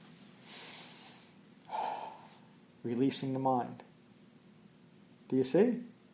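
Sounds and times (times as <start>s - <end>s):
slow breathing during meditation: 0.2s - 2.6s
speech: 2.8s - 3.9s, 5.3s - 6.0s.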